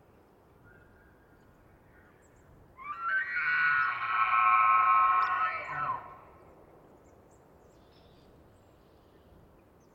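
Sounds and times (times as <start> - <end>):
low background hiss: 0.0 - 9.9
bull elk scream in rutting season on a pine-covered high plateau: 2.8 - 6.2.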